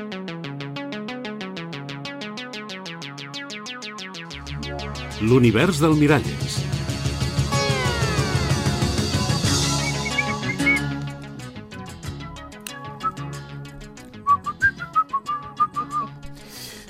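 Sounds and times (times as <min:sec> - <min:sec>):
dense instrumental backing music: 0:00.0 - 0:16.8
speech: 0:04.7 - 0:06.8
person whistling a bright wandering melody: 0:09.7 - 0:10.9, 0:13.0 - 0:13.3, 0:14.2 - 0:16.2.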